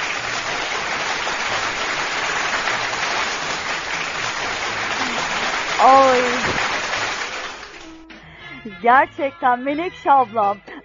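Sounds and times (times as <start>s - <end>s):
crowd applause: 0.0s - 8.0s
speech: 8.8s - 10.7s.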